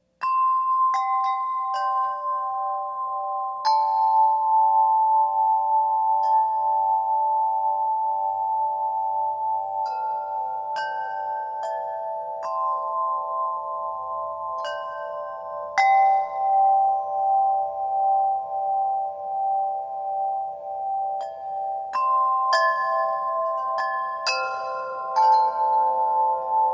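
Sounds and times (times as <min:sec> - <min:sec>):
large wind chime in summer: 0:00.0 - 0:26.7.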